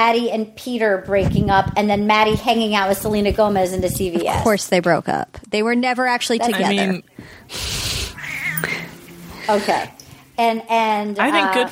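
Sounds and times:
speech: 0.0 - 7.8, 9.5 - 11.6
female cat hissing: 7.5 - 8.9
female cat meowing: 8.1 - 8.9.

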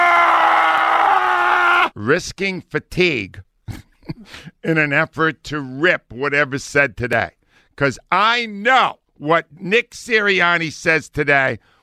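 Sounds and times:
person screaming: 0.0 - 2.0
speech: 2.0 - 11.7.

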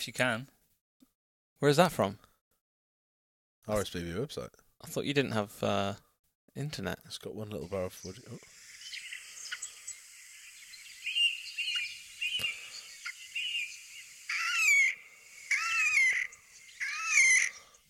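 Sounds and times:
speech: 0.0 - 0.6, 1.6 - 2.3, 3.7 - 6.0, 6.6 - 8.6
Slavonian grebe calling: 8.0 - 17.8.

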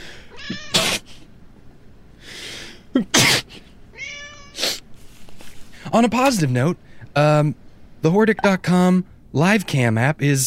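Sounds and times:
cat meowing: 0.3 - 0.8, 3.9 - 4.6
cat sneezing or hissing: 0.4 - 1.3, 3.1 - 3.7, 4.4 - 5.2
speech: 3.0 - 3.4, 5.9 - 10.4.

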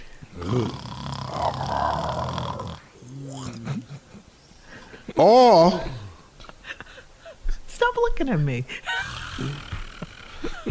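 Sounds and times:
person imitating loud snoring: 0.3 - 3.8, 8.9 - 10.7
speech: 0.4 - 1.0, 5.2 - 5.9, 8.2 - 9.7
laughter: 3.4 - 5.2, 8.8 - 10.7.

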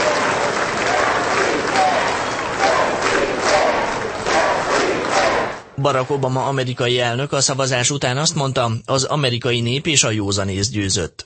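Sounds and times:
faint voices and cheers: 0.0 - 5.6
large crowd applauding in the US House of Representatives after a vote: 0.0 - 5.7
speech: 5.8 - 11.2.

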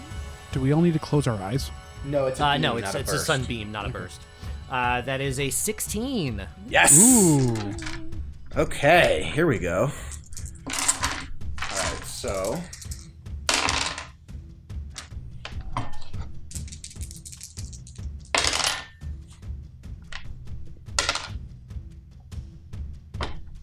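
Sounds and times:
speech: 0.6 - 10.1, 12.2 - 12.8
many dice rolling on a tabletop: 10.0 - 14.1, 16.5 - 18.8, 20.9 - 21.4.

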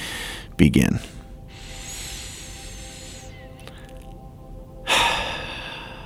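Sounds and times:
speech: 0.6 - 1.2
person seated taking a deep slow breath in a guided breathing exercise: 1.1 - 6.0.

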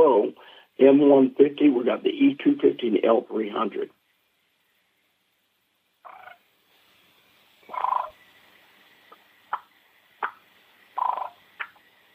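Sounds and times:
speech: 0.8 - 4.0
hen turkey purr played on a game call: 6.0 - 6.4, 7.6 - 8.2, 11.0 - 11.8.

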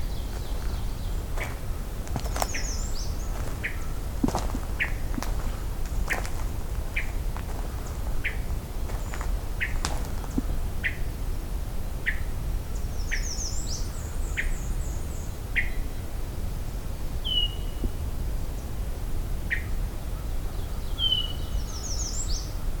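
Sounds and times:
hermit thrush calling with short sharp notes: 0.0 - 11.1
hiss: 0.0 - 22.4.

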